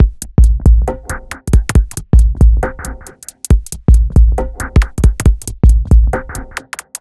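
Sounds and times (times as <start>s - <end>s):
137 bpm dubstep break drum loop: 0.0s - 6.9s.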